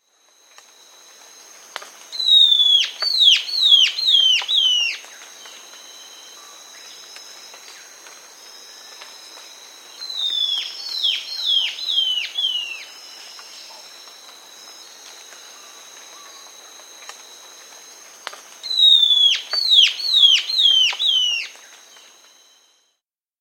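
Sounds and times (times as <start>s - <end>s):
Bare-eyed antbird song in South America: 2.2s - 6.6s, 10.0s - 13.8s, 18.7s - 22.2s.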